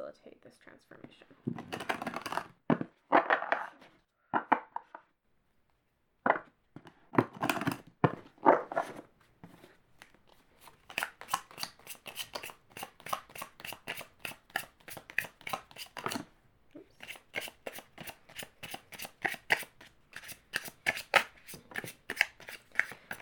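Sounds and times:
speech: 0:00.1 - 0:02.1
deck of cards shuffled in riffling bursts for a card reading: 0:01.5 - 0:04.0, 0:07.4 - 0:16.3, 0:16.9 - 0:23.2.

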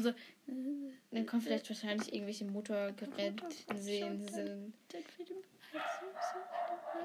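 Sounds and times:
speech: 0:00.0 - 0:07.0
dog giving short barks and yips: 0:05.8 - 0:07.0.

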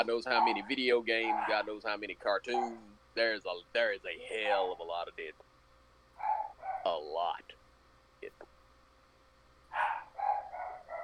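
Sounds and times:
dogs barking: 0:00.0 - 0:01.8, 0:02.4 - 0:02.9, 0:06.2 - 0:07.0, 0:09.7 - 0:11.0
speech: 0:00.0 - 0:05.5, 0:06.8 - 0:07.6.

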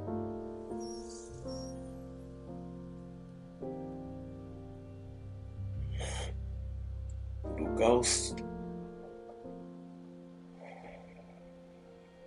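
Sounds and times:
loud music with low sustained tones: 0:00.0 - 0:12.2
slow deep inhale of smoke: 0:05.9 - 0:06.4
speech: 0:07.8 - 0:08.5.

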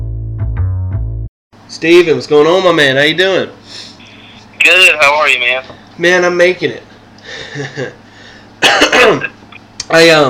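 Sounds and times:
speech: 0:01.7 - 0:03.9, 0:04.6 - 0:08.0, 0:08.6 - 0:09.3, 0:09.9 - 0:10.2
man clearing throat: 0:08.6 - 0:09.4.

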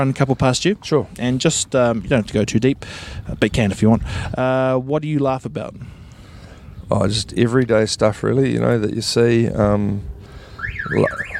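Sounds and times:
speech: 0:00.0 - 0:06.0, 0:06.9 - 0:10.1, 0:10.8 - 0:11.3
car alarm wailing in a rising-and-falling siren tone: 0:10.6 - 0:11.3.

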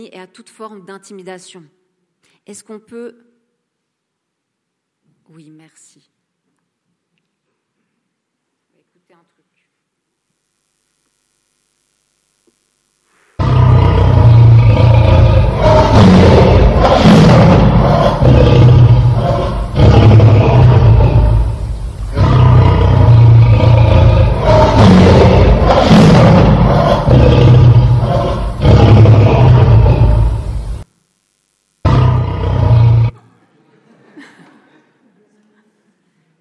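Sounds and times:
speech: 0:00.0 - 0:01.8, 0:02.4 - 0:03.3, 0:05.3 - 0:06.2
lion roaring: 0:13.4 - 0:30.8, 0:31.9 - 0:33.1
laughter: 0:33.2 - 0:36.1.

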